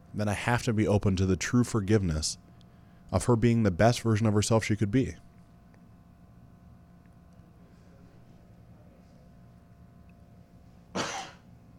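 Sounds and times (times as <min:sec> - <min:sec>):
speech: 0:00.2 - 0:02.5, 0:03.1 - 0:05.3
short sharp cough: 0:10.9 - 0:11.5.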